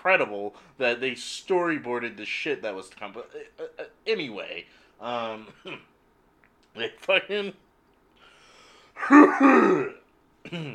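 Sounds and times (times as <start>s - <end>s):
speech: 0.0s - 5.9s, 6.8s - 7.6s, 9.0s - 10.7s
raspy cough from smoking weed: 9.0s - 10.7s.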